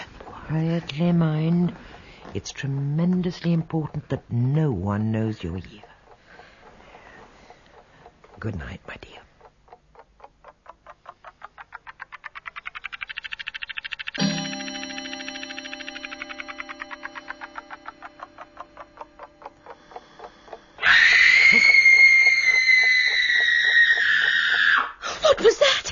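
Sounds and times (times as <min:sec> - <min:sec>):
speech: 0:00.5 - 0:05.9, 0:08.4 - 0:09.3
rapid rattling pulse: 0:12.0 - 0:22.3
ringing bell-like tone: 0:14.2 - 0:22.6
person screaming loudly: 0:20.8 - 0:24.9.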